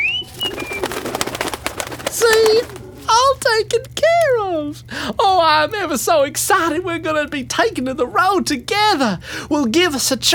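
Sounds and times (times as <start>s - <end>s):
birds cooing: 0.0s - 3.4s
wings flapping: 0.0s - 3.5s
speech: 3.6s - 10.3s.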